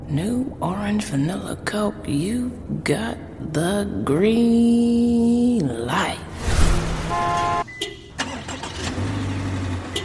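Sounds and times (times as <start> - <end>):
speech: 0.1 - 6.3
car engine starting: 6.6 - 10.0.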